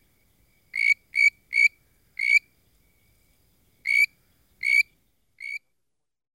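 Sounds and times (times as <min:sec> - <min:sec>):
treefrog calling: 0:00.6 - 0:02.5, 0:03.8 - 0:05.7.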